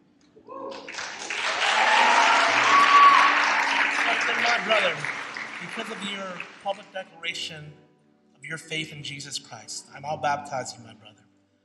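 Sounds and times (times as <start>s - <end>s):
audience applauding: 0.6s - 7.0s
speech: 4.7s - 11.2s.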